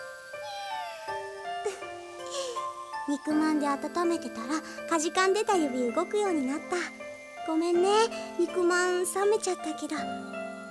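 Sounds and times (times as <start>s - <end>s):
faint hiss of noise: 0.0s - 10.6s
cat meowing: 0.4s - 1.4s
speech: 3.1s - 10.6s.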